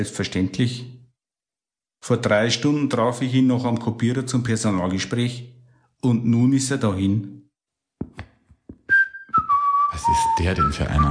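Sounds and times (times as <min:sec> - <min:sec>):
speech: 0:00.0 - 0:00.9, 0:02.0 - 0:07.4, 0:09.9 - 0:11.0
soft uneven footsteps: 0:08.0 - 0:09.6
person whistling two long notes: 0:08.8 - 0:11.0.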